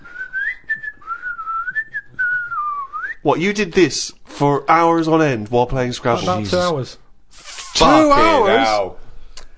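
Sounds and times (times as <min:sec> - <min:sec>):
person whistling a wandering wavering tune: 0:00.0 - 0:03.2
speech: 0:03.2 - 0:07.0, 0:07.8 - 0:09.0.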